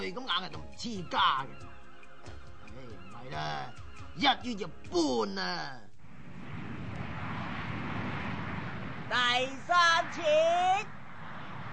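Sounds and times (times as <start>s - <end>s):
speech: 0.1s - 5.9s, 9.1s - 11.0s
airplane engine roar flying overhead: 6.0s - 11.7s.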